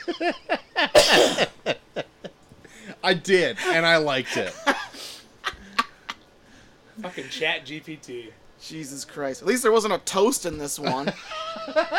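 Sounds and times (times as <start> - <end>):
speech: 0.0 - 0.6, 3.1 - 4.6, 7.2 - 11.9
laughter: 0.0 - 6.2, 10.8 - 11.9
fit of throaty coughing: 0.9 - 1.6.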